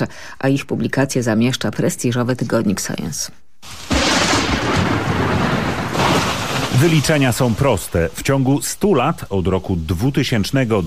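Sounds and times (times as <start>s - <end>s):
speech: 0.0s - 3.8s, 6.8s - 10.8s
rain-like hiss: 3.6s - 10.8s
thunder from lightning striking the ground: 3.8s - 7.8s.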